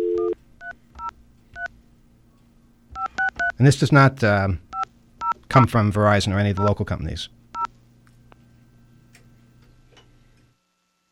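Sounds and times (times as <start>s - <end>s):
steady phone tone: 0.0s - 0.4s
faint hum: 0.0s - 11.0s
speech: 3.6s - 4.6s, 5.5s - 7.4s.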